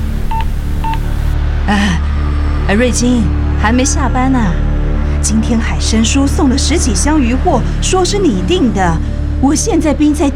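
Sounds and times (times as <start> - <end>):
telephone keypad dialing tones: 0.3 - 1.1
speech: 1.7 - 2.1, 2.7 - 10.3.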